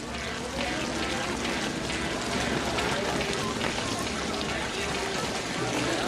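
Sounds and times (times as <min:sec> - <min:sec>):
rain pattering on city pavement in Los Angeles: 0:00.0 - 0:06.0.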